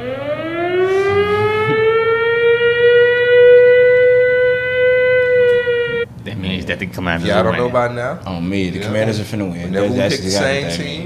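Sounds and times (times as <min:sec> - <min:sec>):
loud alarm siren wailing: 0:00.0 - 0:06.1
speech: 0:06.9 - 0:11.0.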